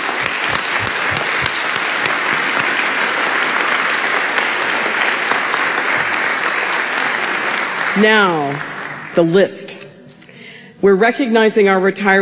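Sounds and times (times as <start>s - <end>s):
large audience applause: 0.0s - 9.3s
speech: 8.0s - 9.7s, 10.8s - 12.2s.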